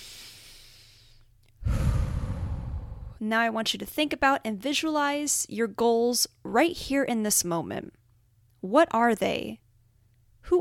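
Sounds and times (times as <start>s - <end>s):
deep breath in and out: 0.0s - 3.2s
speech: 3.2s - 8.0s, 8.6s - 9.6s, 10.4s - 10.6s.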